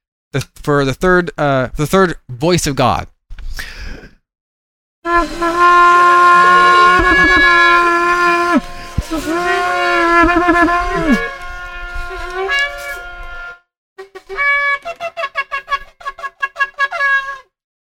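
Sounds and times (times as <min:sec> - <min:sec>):
speech: 0:00.3 - 0:03.8, 0:05.0 - 0:11.3
shofar trumpet blasts: 0:05.1 - 0:17.5.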